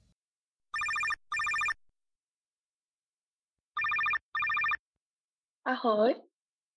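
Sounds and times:
outgoing phone call ringing tone: 0.7s - 1.8s, 3.8s - 4.8s
speech: 5.7s - 6.3s.

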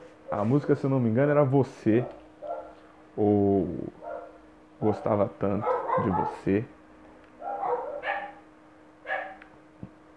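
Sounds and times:
faint steady hum: 0.0s - 10.1s
speech: 0.3s - 2.2s, 3.2s - 4.0s, 4.8s - 6.8s
dog barking: 2.0s - 2.8s, 4.0s - 6.5s, 7.4s - 8.4s, 9.0s - 9.4s.

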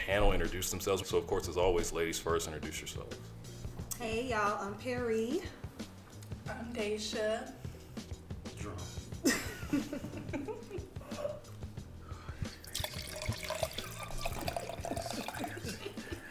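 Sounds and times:
speech: 0.1s - 5.6s, 6.5s - 7.6s
laughter: 9.2s - 11.5s, 15.0s - 16.2s
liquid pouring into a cup: 12.5s - 16.0s.

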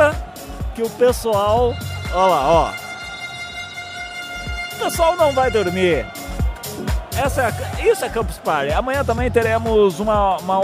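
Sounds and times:
speech: 0.8s - 2.8s, 4.8s - 6.2s, 6.8s - 10.6s
horn blaring at the Campus Party event: 1.5s - 7.7s.

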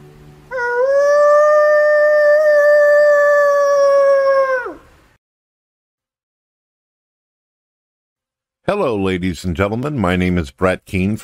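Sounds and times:
person imitating a wolf howl: 0.5s - 5.0s
speech: 8.7s - 11.2s.

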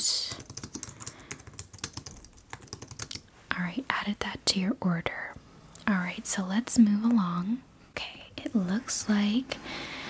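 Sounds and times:
quiet typing on a computer keyboard at a store counter: 0.3s - 3.2s
speech: 3.6s - 5.4s, 6.1s - 7.7s, 8.5s - 9.8s.

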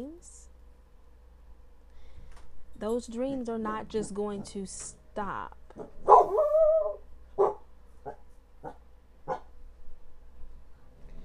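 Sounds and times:
speech: 2.8s - 6.4s
dog whining yelp: 5.8s - 9.4s.

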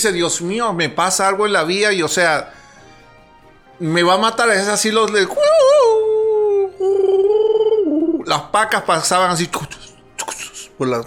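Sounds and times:
speech: 0.0s - 2.6s, 3.8s - 6.1s, 8.3s - 9.8s, 10.8s - 11.0s
coyote howling: 5.3s - 8.3s.

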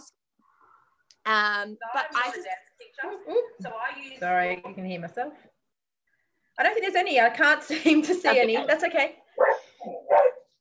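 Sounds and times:
speech: 1.3s - 5.5s, 6.6s - 10.3s
dog barking: 9.4s - 10.5s.

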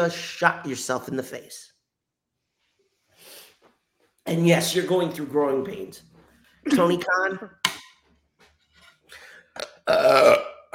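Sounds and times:
speech: 0.0s - 1.7s, 4.2s - 7.7s, 9.9s - 10.5s
quieter throaty sounds: 9.0s - 10.7s
loud drawn-out gravelly burp: 9.6s - 10.7s.

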